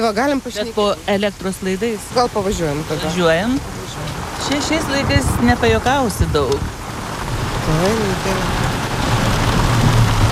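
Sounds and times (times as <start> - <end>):
speech: 0.0 - 6.8, 7.7 - 8.7
heavy downpour of rain: 0.0 - 10.2.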